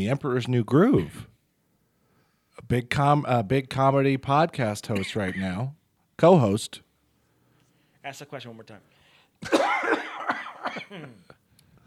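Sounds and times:
speech: 0:00.0 - 0:01.3, 0:02.7 - 0:06.8, 0:08.0 - 0:11.4
harsh voiced coughs: 0:04.9 - 0:05.7, 0:09.4 - 0:11.4.

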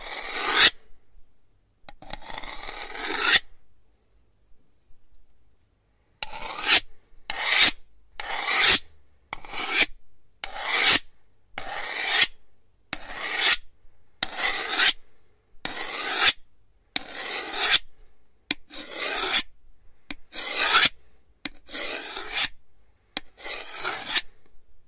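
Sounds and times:
knife drawn across a sharpening stone: 0:00.0 - 0:00.8, 0:02.0 - 0:03.5, 0:06.2 - 0:08.8, 0:09.4 - 0:11.0, 0:11.6 - 0:12.3, 0:13.0 - 0:13.6, 0:14.2 - 0:15.0, 0:15.6 - 0:16.4, 0:17.0 - 0:17.9, 0:18.6 - 0:19.5, 0:20.3 - 0:22.6, 0:23.2 - 0:24.4.

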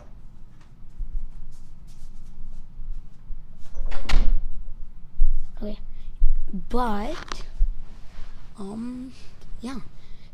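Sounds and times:
door swinging shut with a firm thud: 0:03.6 - 0:04.5
speech: 0:05.6 - 0:05.9, 0:06.5 - 0:07.5, 0:08.6 - 0:09.9.

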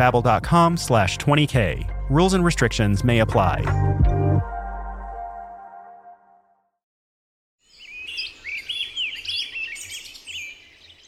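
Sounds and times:
speech: 0:00.0 - 0:03.9
bird singing a warbling song: 0:07.6 - 0:11.0.

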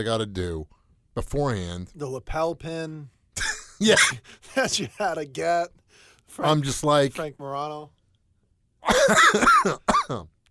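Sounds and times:
speech: 0:00.0 - 0:08.0, 0:08.8 - 0:10.4
person coughing with raspy hacking: 0:03.4 - 0:04.3, 0:08.8 - 0:10.3.

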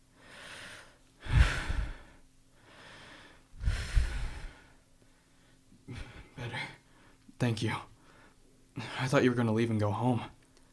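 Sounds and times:
heavy laboured human breathing from someone with burning chest pain: 0:00.1 - 0:07.2
speech: 0:07.4 - 0:07.9, 0:08.8 - 0:10.7.

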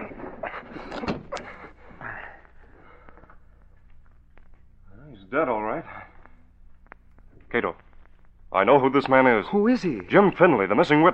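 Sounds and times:
door banging shut: 0:00.8 - 0:01.6
speech: 0:08.6 - 0:11.1.

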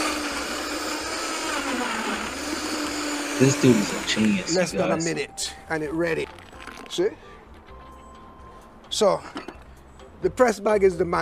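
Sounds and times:
blender blending pineapple and coconut water at high speed: 0:00.0 - 0:04.9
speech: 0:03.4 - 0:07.3, 0:09.0 - 0:09.4, 0:10.2 - 0:11.1.

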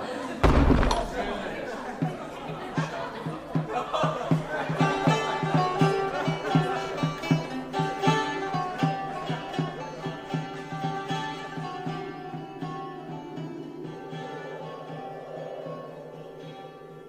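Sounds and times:
laughter: 0:00.0 - 0:08.1
stream of voices echoing in the hall: 0:00.0 - 0:17.0
heavy hall door slamming shut: 0:00.4 - 0:01.8.

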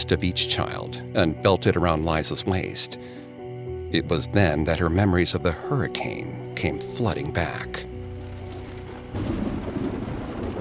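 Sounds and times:
speech: 0:00.0 - 0:03.2, 0:03.9 - 0:07.9
deep thunder rumbling: 0:07.8 - 0:10.5
steady rain of a storm: 0:07.8 - 0:10.5.

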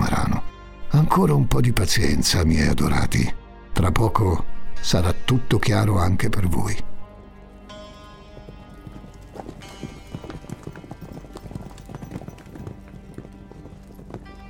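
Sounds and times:
sustained tonal background: 0:00.0 - 0:14.4
speech: 0:01.0 - 0:06.9
horse hooves galloping: 0:07.2 - 0:14.4.

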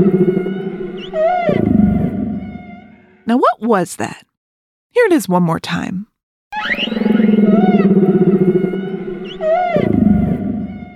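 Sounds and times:
humpback whale song: 0:00.0 - 0:03.2, 0:06.6 - 0:10.9
speech: 0:03.3 - 0:04.3, 0:05.0 - 0:06.8.

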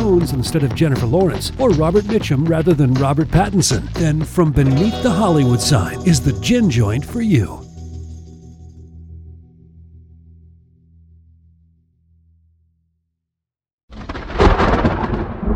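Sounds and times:
speech: 0:00.1 - 0:07.6
deep rolling rumble of thunder in a thunderstorm: 0:14.0 - 0:15.5.

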